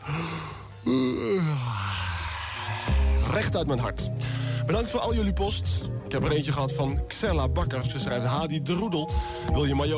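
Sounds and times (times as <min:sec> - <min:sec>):
radio presenter yawning: 0:00.0 - 0:03.2
speech: 0:03.4 - 0:09.9.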